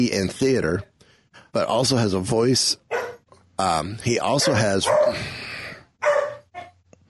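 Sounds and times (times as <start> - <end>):
speech: 0.0 - 0.9, 1.5 - 2.9, 3.6 - 5.5
dog barking: 2.9 - 3.3, 4.3 - 5.2, 6.0 - 6.8.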